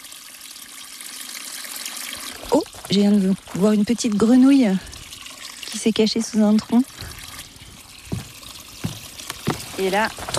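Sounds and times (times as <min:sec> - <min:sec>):
water trickling along a muddy forest path crossed by small footbridges: 0:00.0 - 0:10.3
speech: 0:02.5 - 0:04.9, 0:05.8 - 0:07.0, 0:09.8 - 0:10.3.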